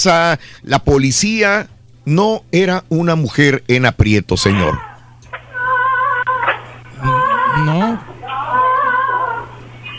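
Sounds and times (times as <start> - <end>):
speech: 0.0 - 4.9
parakeet squawking like a cat's meow: 4.5 - 9.9.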